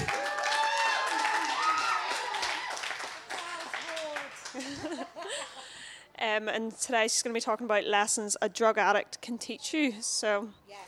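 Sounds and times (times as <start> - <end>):
audience whoops: 0.0 - 2.9
audience clapping: 0.0 - 5.0
laughter: 4.4 - 5.9
speech: 6.3 - 10.6.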